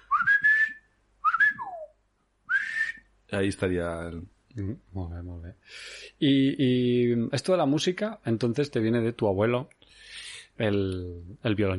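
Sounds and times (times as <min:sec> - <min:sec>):
person whistling in a whistled language: 0:00.0 - 0:01.9, 0:02.5 - 0:03.1
speech: 0:03.3 - 0:11.7.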